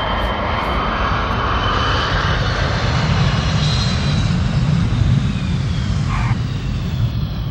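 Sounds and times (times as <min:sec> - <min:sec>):
1989 airliner landing at Paris Orly airport: 0:00.0 - 0:07.4.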